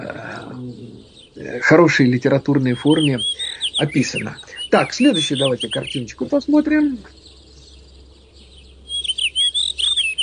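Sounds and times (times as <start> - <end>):
faint low hum: 0.0 - 10.2
small parrot singing with chirps and warbling trills: 0.0 - 10.2
speech: 0.6 - 7.2.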